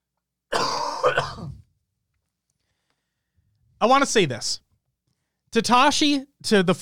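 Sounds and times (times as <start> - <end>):
person coughing: 0.5 - 1.7
throat clearing: 0.5 - 1.7
speech: 3.8 - 4.6, 5.5 - 6.8.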